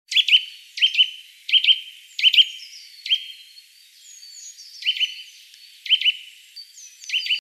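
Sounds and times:
Eurasian nuthatch Sitta europaea calls: 0.1 - 7.3.

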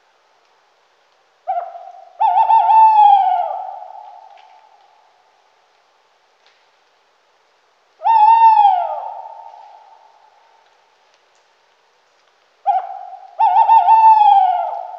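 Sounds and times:
Tawny owl Strix aluco hooting: 1.4 - 4.8, 8.0 - 10.2, 12.6 - 14.9.

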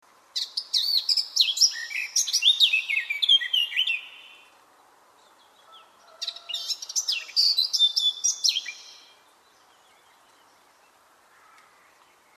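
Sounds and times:
Eurasian blackcap Sylvia atricapilla warbling song: 0.4 - 4.5, 5.2 - 10.6.

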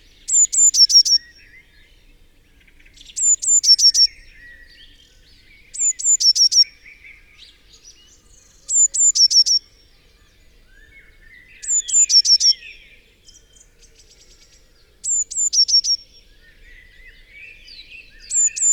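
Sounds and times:
faint bird chirps: 0.0 - 1.8, 2.5 - 18.7
Eurasian blue tit Cyanistes caeruleus singing: 0.2 - 1.5, 2.7 - 5.0, 5.6 - 6.8, 7.8 - 9.9, 11.1 - 13.6, 15.0 - 18.7.

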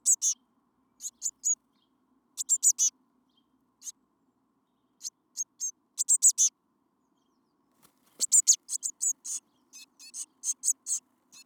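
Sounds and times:
Eurasian blue tit Cyanistes caeruleus calling: 0.0 - 0.4, 1.0 - 1.6, 2.4 - 2.9, 5.0 - 6.5, 8.2 - 11.4.

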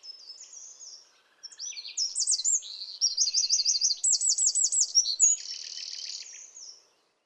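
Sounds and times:
Eurasian wren Troglodytes troglodytes singing: 1.5 - 6.8.

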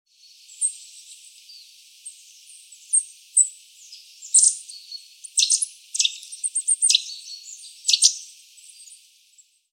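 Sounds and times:
Eurasian nuthatch Sitta europaea calling sharp high notes: 2.8 - 9.0.

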